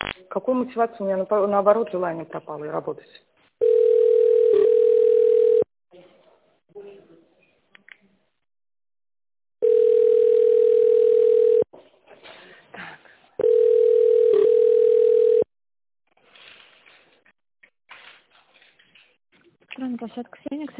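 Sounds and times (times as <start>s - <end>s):
speech: 0.4s - 3.3s, 20.1s - 20.7s
telephone ringback tone: 3.6s - 5.7s, 9.6s - 11.7s, 13.4s - 15.5s.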